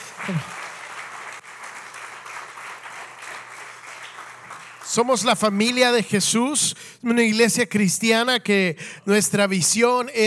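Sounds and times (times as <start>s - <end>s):
audience applause in an indoor space: 0.0s - 5.6s
speech: 0.2s - 0.6s, 5.0s - 10.2s.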